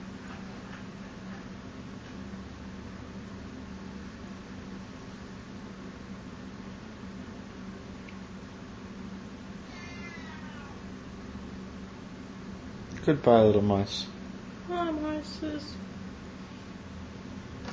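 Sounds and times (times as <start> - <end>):
fan-like hum: 0.0 - 17.7
cat meowing: 9.6 - 10.9
speech: 13.0 - 14.1, 15.2 - 15.9.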